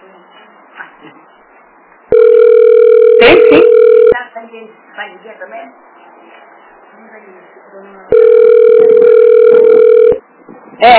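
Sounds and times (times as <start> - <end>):
telephone ringing tone: 2.1 - 4.2, 8.1 - 10.2
speech: 4.6 - 6.4, 10.8 - 10.9.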